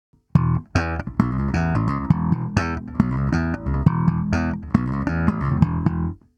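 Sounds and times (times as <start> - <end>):
slap bass playing: 0.3 - 6.2.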